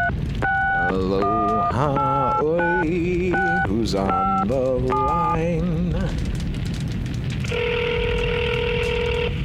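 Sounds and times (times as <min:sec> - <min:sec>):
touch-tone phone beep while dialing a number: 0:00.0 - 0:05.4
constant low rumble of noise: 0:00.0 - 0:09.4
speech: 0:00.9 - 0:06.4.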